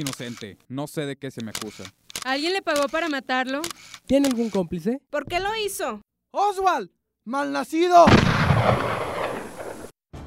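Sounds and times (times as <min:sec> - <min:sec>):
speech: 0:00.0 - 0:09.0
loud sharp gunshot with rumbling echo: 0:08.0 - 0:09.9.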